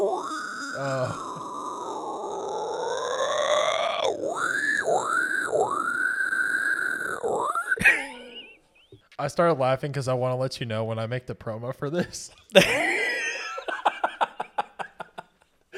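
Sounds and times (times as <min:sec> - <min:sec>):
person imitating a hardcore metal pig squeal scream: 0:00.0 - 0:08.6
speech: 0:09.2 - 0:12.8
laughter: 0:12.6 - 0:15.7.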